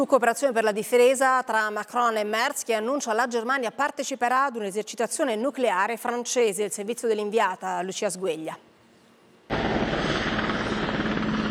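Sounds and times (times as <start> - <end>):
speech: 0.0 - 8.7
military helicopter rotor roar: 9.5 - 11.4.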